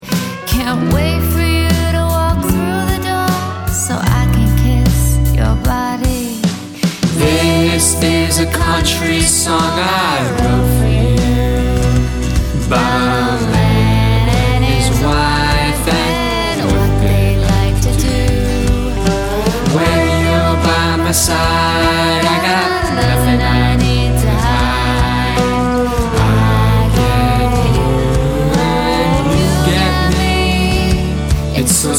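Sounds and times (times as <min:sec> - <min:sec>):
woman singing a country song: 0:00.0 - 0:31.9
chorus singing a country song: 0:06.8 - 0:31.9.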